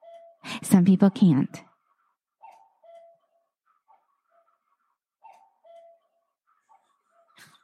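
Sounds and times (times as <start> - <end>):
cuckoo clock calling in two-note hoots: 0.0 - 0.4, 2.4 - 7.6
speech: 0.6 - 1.7
cuckoo clock mechanical noise: 1.7 - 7.6.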